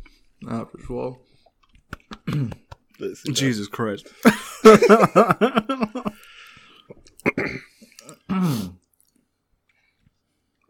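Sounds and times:
speech: 0.4s - 1.3s, 2.3s - 6.1s
wet rhythmic voiced chewing and swallowing sounds: 1.4s - 3.0s, 6.2s - 10.6s
sticky mouth clicks: 1.5s - 3.0s, 6.9s - 8.2s
laughter: 4.2s - 6.2s.

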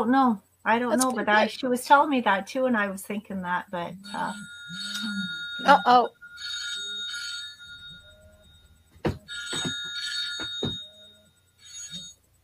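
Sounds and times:
speech: 0.0s - 6.2s
phone ringing with electronic bell-like tones: 3.8s - 12.4s.

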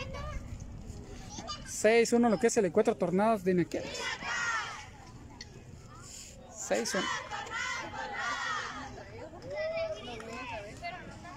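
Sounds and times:
crowd noise: 0.0s - 11.3s
speech: 1.8s - 4.3s, 6.7s - 7.3s
sports team's young voices shouting a group cheer at the end of a match: 3.8s - 5.0s, 6.8s - 10.6s.

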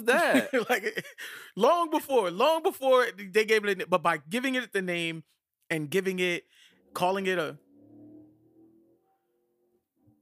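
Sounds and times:
speech: 0.0s - 7.6s
laughter: 0.1s - 1.4s
loud car engine revving outside: 6.7s - 10.2s.

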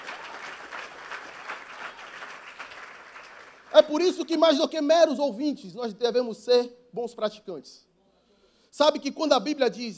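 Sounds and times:
audience applauding: 0.0s - 4.0s
speech: 3.8s - 7.9s, 8.8s - 9.9s.

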